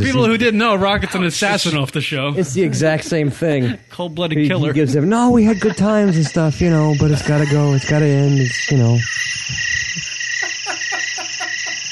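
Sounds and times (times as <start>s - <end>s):
speech: 0.0s - 9.6s
laughter: 0.0s - 11.8s
chorus of crickets chirping: 3.9s - 11.8s
evenly spaced throaty pulsing calls: 5.1s - 11.8s.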